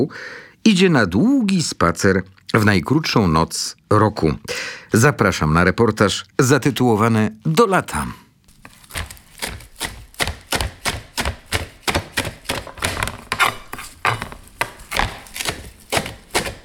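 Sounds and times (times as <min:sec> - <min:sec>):
speech: 0:00.0 - 0:08.2
knife coarsely chopping parsley: 0:08.5 - 0:16.6.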